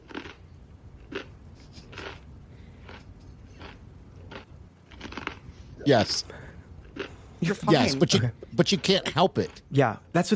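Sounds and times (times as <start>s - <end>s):
crunchy chewing of food: 0.0s - 5.8s, 6.8s - 7.3s
low hum: 0.0s - 10.3s
speech: 5.8s - 6.4s, 7.4s - 10.3s.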